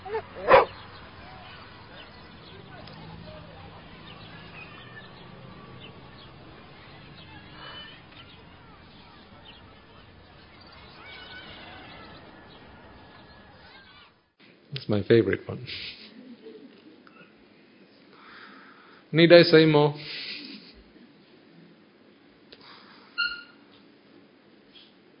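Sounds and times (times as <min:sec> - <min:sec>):
dog barking: 0:00.0 - 0:02.1
low murmuring noise: 0:00.0 - 0:19.2, 0:20.0 - 0:25.1
speech: 0:14.8 - 0:16.0, 0:19.1 - 0:20.2.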